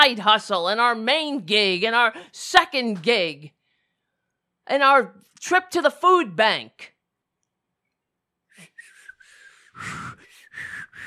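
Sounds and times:
speech: 0.0 - 3.6, 4.7 - 6.9
breathy attempted whistling: 8.5 - 11.0.

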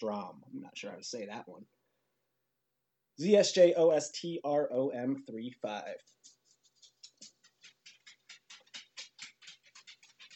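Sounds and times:
speech: 0.0 - 1.8, 3.2 - 6.4
dogs' claws tapping on a hard floor: 6.3 - 10.3.

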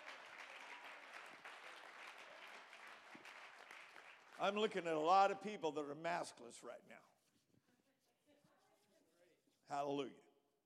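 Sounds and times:
church audience clapping in praise: 0.0 - 5.2
speech: 4.4 - 7.1, 9.7 - 10.2.

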